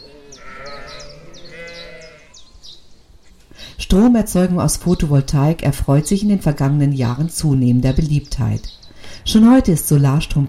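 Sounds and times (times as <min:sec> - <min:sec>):
sheep bleating on an extensively used meadow: 0:00.0 - 0:02.4
short high chirps of birdsong: 0:00.0 - 0:10.4
steady outdoor noise: 0:00.0 - 0:10.4
speech: 0:03.9 - 0:10.4.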